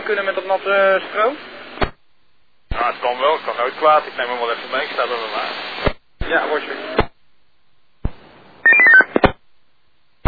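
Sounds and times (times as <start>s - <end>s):
speech: 0.1s - 1.5s, 2.8s - 7.0s
telephone keypad tones as a code is entered: 8.6s - 9.1s.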